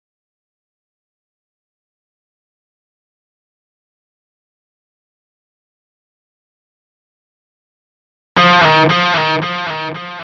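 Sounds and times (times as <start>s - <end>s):
intro guitar with delay: 8.4s - 10.2s.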